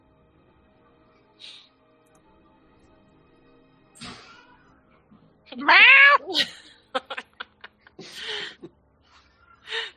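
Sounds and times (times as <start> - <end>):
cat meowing in the distance: 5.6 - 6.3
laughter: 6.4 - 8.7.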